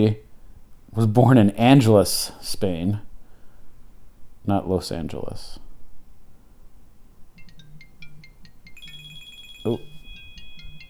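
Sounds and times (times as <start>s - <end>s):
speech: 0.0s - 0.2s, 0.9s - 3.1s, 4.4s - 5.6s, 9.6s - 9.9s
faint low hum: 0.0s - 10.8s
phone ringtone chiming: 7.4s - 10.8s.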